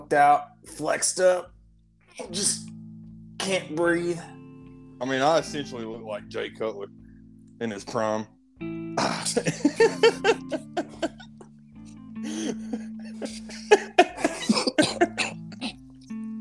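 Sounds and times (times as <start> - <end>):
speech: 0.1 - 1.6, 2.2 - 2.8, 3.4 - 4.4, 5.0 - 7.0, 7.6 - 10.7
steady tonal background: 1.5 - 16.3
man with a chest cold coughing: 9.0 - 11.4, 12.3 - 15.5.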